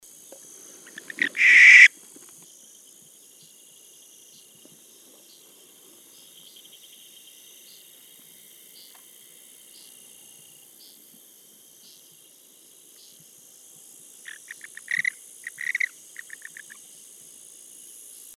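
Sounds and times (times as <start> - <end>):
Tyto capensis African grass owl calling: 0.6 - 2.0, 14.3 - 16.8.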